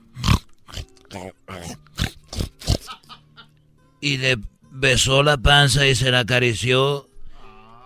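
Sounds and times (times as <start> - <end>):
person imitating pig grunts and oinks: 0.1 - 3.0, 7.4 - 7.8
speech: 1.1 - 1.8, 4.0 - 7.1.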